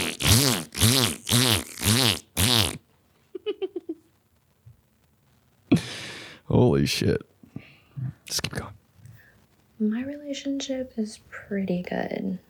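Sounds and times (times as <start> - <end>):
voice imitating farting over bumps while riding a jet ski: 0.0 - 2.8
speech: 6.8 - 7.3, 9.8 - 12.4.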